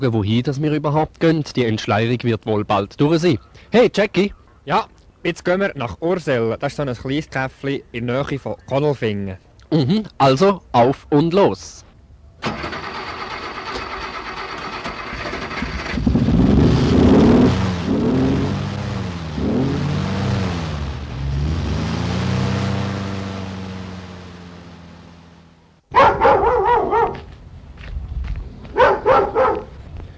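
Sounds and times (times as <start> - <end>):
speech: 0.0 - 11.8, 12.4 - 12.8
car engine starting, revving and pulling away through gear changes: 12.4 - 25.8
dog barking: 25.9 - 27.3, 28.7 - 29.8.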